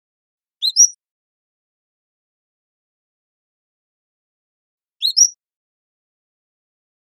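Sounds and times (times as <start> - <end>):
Cordilleran flycatcher high sibilant two-part calls: 0.6 - 1.0, 5.0 - 5.4.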